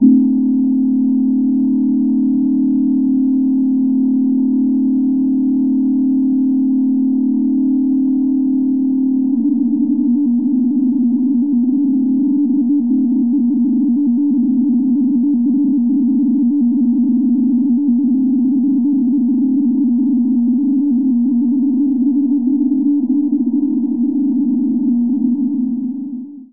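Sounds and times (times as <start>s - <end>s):
radio drone transmission from an FM synth: 0.0s - 26.5s.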